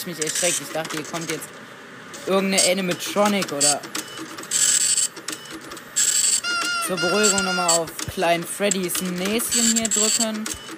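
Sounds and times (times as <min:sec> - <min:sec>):
speech: 0:00.0 - 0:04.6, 0:06.9 - 0:10.7
printer printing flyers in a pizzeria simulator video game: 0:03.1 - 0:08.1.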